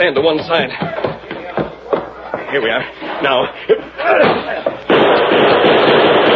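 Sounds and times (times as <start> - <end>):
speech: 0.0 - 1.0, 2.5 - 6.3
harsh crackling noise: 3.8 - 6.3
gunshot through a door: 4.2 - 6.3.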